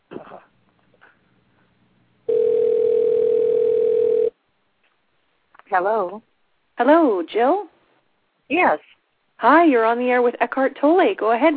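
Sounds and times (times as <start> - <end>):
telephone dial tone while a caller is being dialed: 2.3 - 4.3
speech: 5.8 - 7.7, 8.5 - 11.5.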